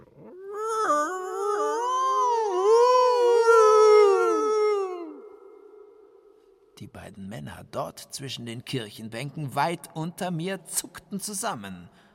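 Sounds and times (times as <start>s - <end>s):
eerie howling cry in a cathedral: 0.0s - 6.3s
speech: 7.1s - 12.0s.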